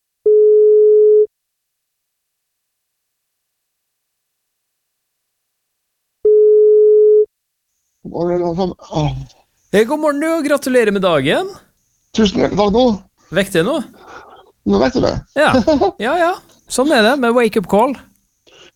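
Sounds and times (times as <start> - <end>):
telephone ringback tone while placing a call: 0.2 - 1.3, 6.3 - 7.3
man speaking on the phone line: 8.1 - 11.6, 12.3 - 14.0, 14.7 - 18.0
speech: 8.1 - 18.1.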